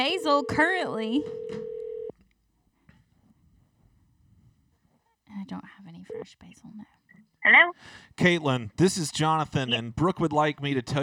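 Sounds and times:
speech: 0:00.0 - 0:01.6, 0:05.3 - 0:11.0
phone call ringing tone: 0:00.0 - 0:02.1.

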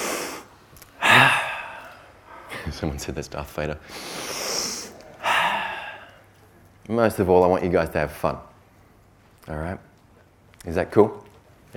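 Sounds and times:
audience inhaling together: 0:00.0 - 0:02.7, 0:03.8 - 0:06.3
speech: 0:02.7 - 0:04.4, 0:06.9 - 0:08.5, 0:09.5 - 0:09.9, 0:10.6 - 0:11.7.

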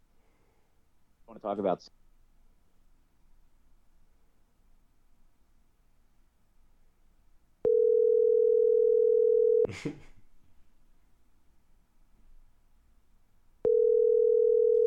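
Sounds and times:
speech: 0:01.3 - 0:02.0
telephone ringing tone while redialing a dropped call: 0:07.6 - 0:09.7, 0:13.6 - 0:14.8.

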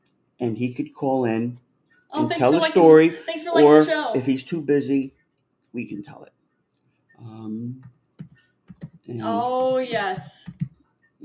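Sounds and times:
speech: 0:00.4 - 0:06.4, 0:07.2 - 0:07.9, 0:09.1 - 0:10.6
typing on a computer keyboard: 0:07.8 - 0:09.1, 0:10.1 - 0:10.8.

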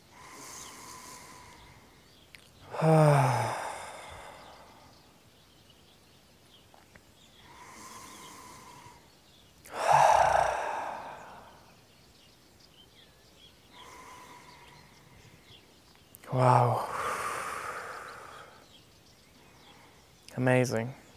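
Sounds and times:
deep slow breathing during a guided meditation: 0:00.0 - 0:05.2, 0:07.3 - 0:12.0, 0:13.6 - 0:15.8, 0:16.5 - 0:20.2
speech: 0:02.8 - 0:03.4, 0:20.4 - 0:21.0.

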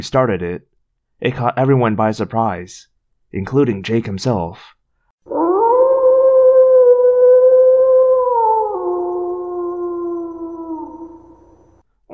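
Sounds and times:
speech: 0:00.0 - 0:05.4
wolves howling: 0:05.3 - 0:11.8.

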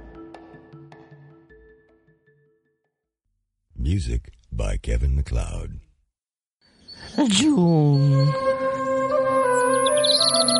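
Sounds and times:
speech: 0:03.8 - 0:05.9, 0:07.2 - 0:08.6, 0:10.2 - 0:10.5
birds chirping: 0:06.7 - 0:10.5.

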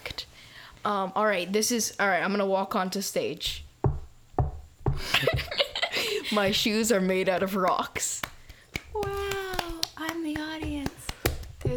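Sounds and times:
speech: 0:00.8 - 0:03.6, 0:06.3 - 0:08.2
laughter: 0:05.0 - 0:06.4
single hand claps: 0:07.0 - 0:11.7.

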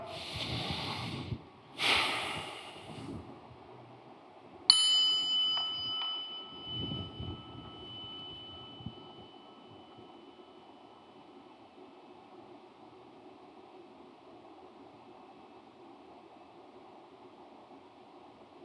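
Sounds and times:
group at a prayer service taking a big deep breath: 0:00.0 - 0:03.2
bright bell ding: 0:04.7 - 0:10.6.

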